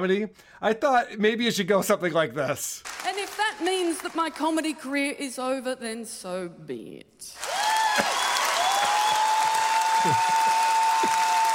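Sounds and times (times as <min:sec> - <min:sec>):
speech: 0:00.0 - 0:03.0, 0:03.6 - 0:07.4, 0:08.0 - 0:08.3, 0:10.0 - 0:10.4
canned audience applause: 0:02.8 - 0:04.6, 0:07.4 - 0:11.5.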